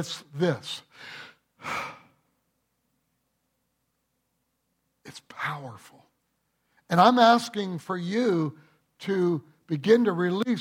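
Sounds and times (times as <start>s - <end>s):
speech: 0.0s - 2.0s, 5.1s - 6.1s, 6.9s - 10.5s
person breathing in: 0.9s - 2.2s.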